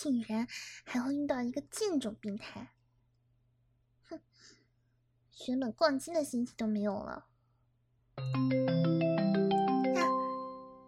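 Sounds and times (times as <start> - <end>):
speech: 0.0 - 2.8, 4.1 - 4.6, 5.4 - 7.3, 8.2 - 9.1
mobile phone ringtone with a bright electronic melody: 8.2 - 10.8.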